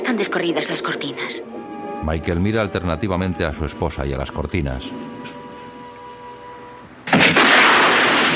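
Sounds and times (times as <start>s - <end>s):
speech: 0.2s - 5.1s
heavy gunfire tearing through a room in a crime film scene: 7.1s - 8.3s.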